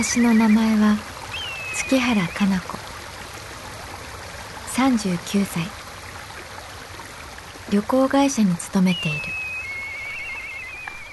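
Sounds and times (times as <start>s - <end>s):
speech: 0.0s - 1.1s, 1.8s - 2.8s, 4.8s - 5.8s, 7.7s - 9.4s
Azusa River mountain stream murmuring in Kamikochi Nagano Japan on an autumn evening: 0.0s - 11.1s.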